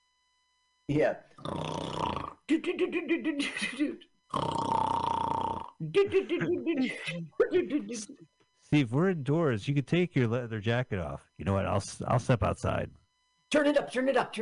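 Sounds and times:
speech: 0.9 - 1.8, 2.5 - 4.6, 5.8 - 14.4
loud snoring: 1.4 - 2.4, 4.3 - 5.8.

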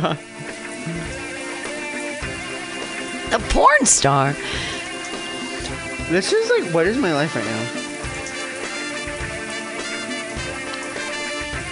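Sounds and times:
speech: 0.0 - 1.3, 3.3 - 4.8, 6.1 - 7.8
shower running: 0.0 - 11.7.

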